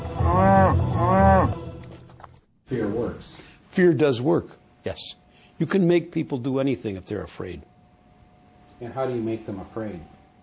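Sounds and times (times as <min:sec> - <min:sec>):
cattle mooing: 0:00.0 - 0:01.6
speech: 0:03.2 - 0:07.7, 0:08.8 - 0:10.2.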